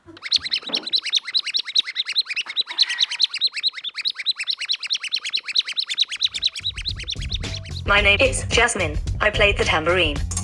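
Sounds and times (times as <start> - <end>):
squeaky bird box toy chirping: 0.1 - 7.8
speech: 7.9 - 10.3.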